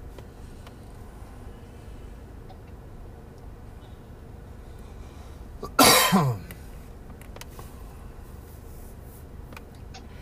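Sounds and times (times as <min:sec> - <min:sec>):
person coughing: 0:05.6 - 0:06.5.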